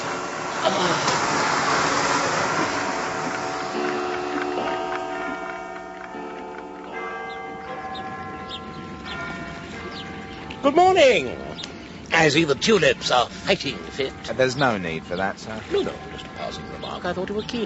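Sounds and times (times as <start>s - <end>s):
vacuum cleaner running: 0.0s - 4.7s
speech: 10.7s - 11.5s, 12.2s - 17.6s.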